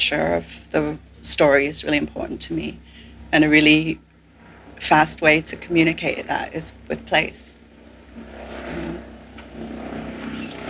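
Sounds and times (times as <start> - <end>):
speech: 0.0 - 4.1, 4.8 - 7.6
helicopter flying overhead: 5.5 - 10.6.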